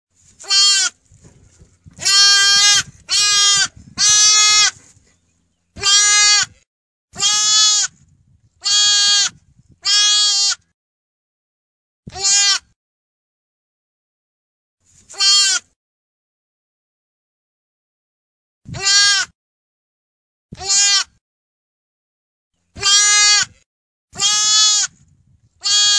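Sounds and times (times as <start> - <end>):
orphan lamb: 0.2 - 10.6, 12.1 - 12.8, 14.8 - 15.8, 18.7 - 19.3, 20.5 - 21.2, 22.8 - 25.9.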